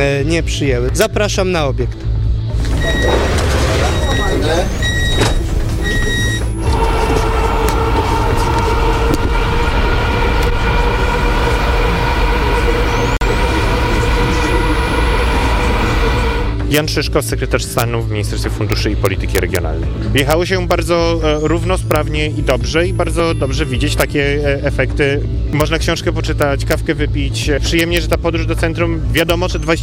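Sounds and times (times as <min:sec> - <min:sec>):
speech: 0:00.0 - 0:03.0, 0:16.7 - 0:29.8
passenger train running on tracks: 0:02.6 - 0:17.7.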